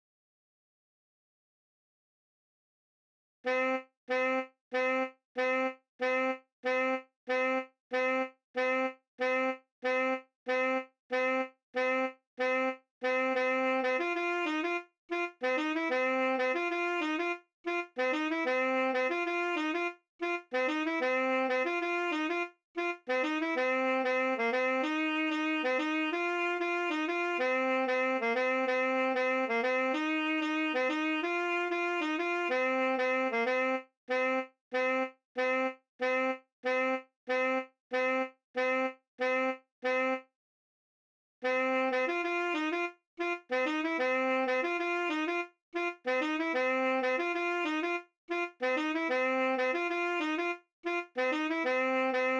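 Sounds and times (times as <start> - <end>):
saxophone: 3.4 - 40.3, 41.4 - 52.3.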